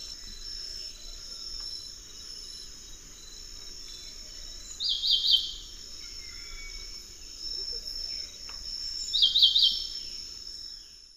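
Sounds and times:
high insect drone: 0.0s - 11.1s
Henicorhina leucosticta white-breasted wood wren song in the Eastern Lowlands: 4.5s - 11.0s.

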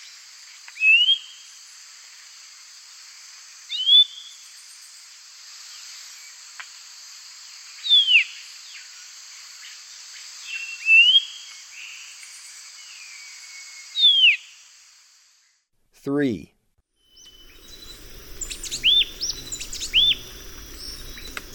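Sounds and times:
faint high insect hiss: 0.0s - 15.7s, 17.1s - 21.5s
speech: 16.0s - 16.5s
thick-billed euphonia whistled call notes in South American eastern lowlands: 17.1s - 21.5s.

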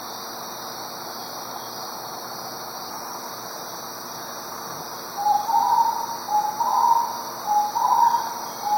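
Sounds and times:
steady hiss: 0.0s - 8.7s
starred wood quail calling in Ecuador: 5.2s - 8.7s.

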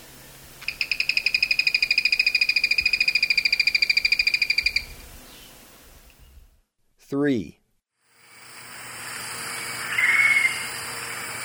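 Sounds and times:
Zimmer's tody-tyrant singing a rattle of rapid buzzy pulses: 0.0s - 6.4s, 8.2s - 11.4s
speech: 7.1s - 7.6s.

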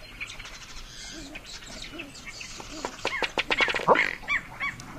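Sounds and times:
male ruddy duck display ticking clicks and burping note: 2.6s - 4.9s.

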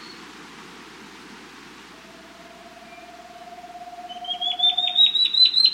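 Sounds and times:
Crescent-faced Antpitta singing in South America: 1.9s - 5.5s.

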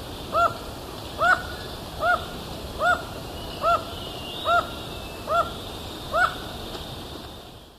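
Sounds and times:
Black-mandibled toucan giving yelping two-tone notes in Ecuador: 0.3s - 0.6s, 1.2s - 6.5s.

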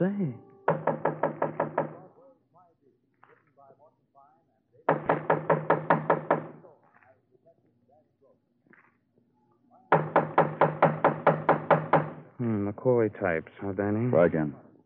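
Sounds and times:
speech: 0.0s - 0.5s, 12.8s - 14.7s
rapid rhythmic knocking on a door: 0.7s - 2.1s, 4.9s - 6.6s, 9.9s - 12.3s.

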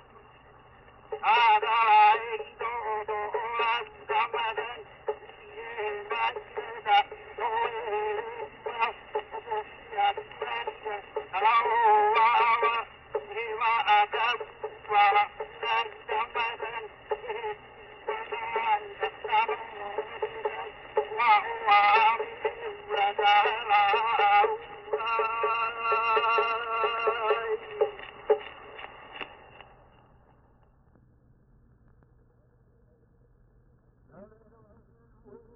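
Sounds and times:
Hawaiian place-name chant: 1.1s - 29.0s.

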